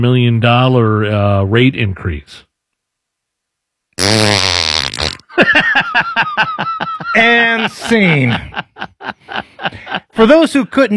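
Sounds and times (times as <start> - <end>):
speech: 0.0 - 2.5, 5.4 - 10.9
loud drawn-out blaring fart: 4.0 - 5.3
laughter: 5.3 - 10.2.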